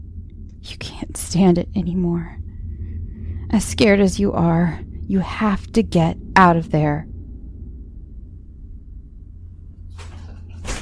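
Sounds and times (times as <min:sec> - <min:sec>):
steady low rumble: 0:00.0 - 0:10.8
speech: 0:00.6 - 0:02.4, 0:03.5 - 0:07.1
closet door sliding open: 0:09.9 - 0:10.8.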